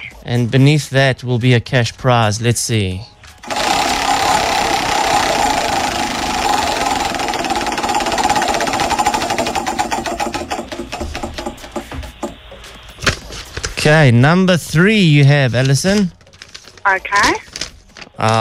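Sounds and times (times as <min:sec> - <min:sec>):
speech: 0:00.2 - 0:03.1, 0:13.8 - 0:16.2, 0:16.8 - 0:17.5, 0:18.2 - 0:18.3
prize wheel spinning in a cash-prize game: 0:03.4 - 0:11.9.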